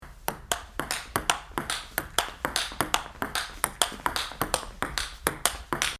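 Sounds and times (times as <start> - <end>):
ping pong: 0.0 - 5.9.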